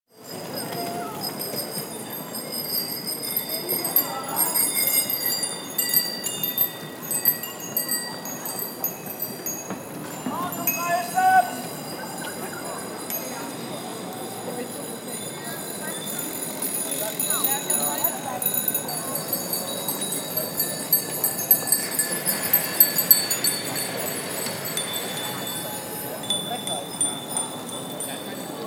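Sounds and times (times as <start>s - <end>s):
car-free city ambience: 0.1s - 28.6s.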